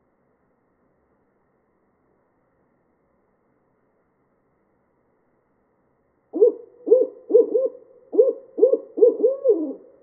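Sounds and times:
barred owl hooting: 0:06.4 - 0:10.0.

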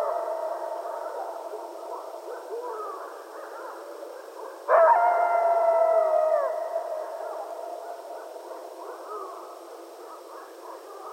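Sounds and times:
several coyotes at night in a chorus of yips and yodels: 0:00.0 - 0:11.1.

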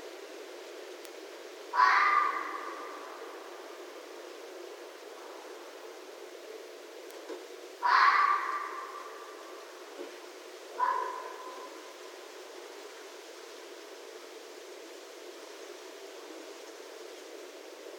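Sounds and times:
constant hiss: 0:00.0 - 0:17.9
red fox calling with harsh raspy cries: 0:01.7 - 0:03.2, 0:07.8 - 0:09.4, 0:10.8 - 0:11.8.

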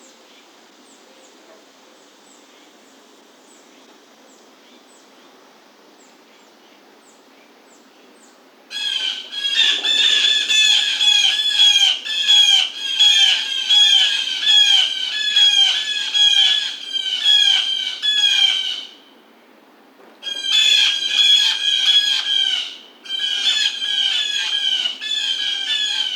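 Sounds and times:
blue jay squawking: 0:08.7 - 0:18.9, 0:20.2 - 0:26.1.

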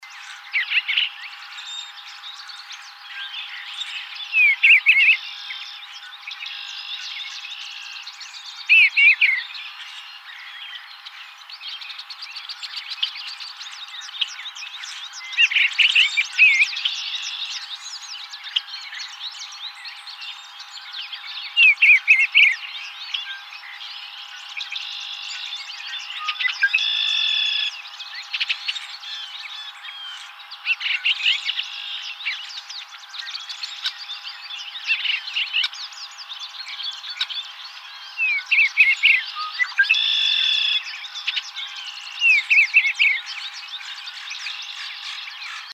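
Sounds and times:
Eastern bluebird: 0:00.0 - 0:45.7.

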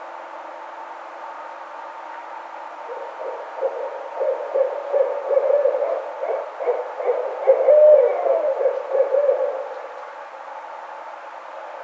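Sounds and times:
barred owl giving low wavering hooting calls: 0:02.8 - 0:10.0.

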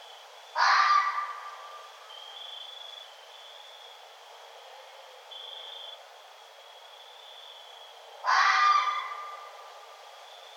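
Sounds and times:
red fox hoarse rasping call: 0:00.6 - 0:01.5, 0:08.2 - 0:09.5.

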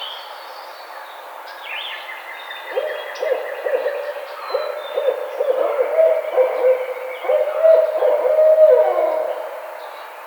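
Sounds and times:
barred owl hooting: 0:02.7 - 0:09.9.

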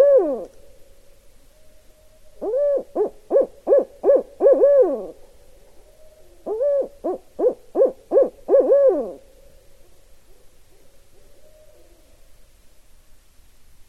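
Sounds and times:
barred owl hooting: 0:00.0 - 0:00.8, 0:01.5 - 0:09.6.

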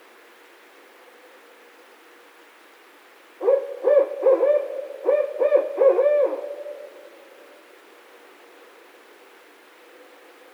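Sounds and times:
barred owl giving deep wavering hoots: 0:03.4 - 0:07.0.

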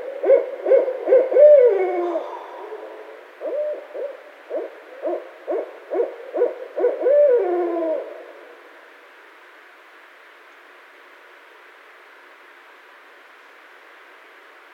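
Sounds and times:
barred owl hooting: 0:00.0 - 0:08.6.

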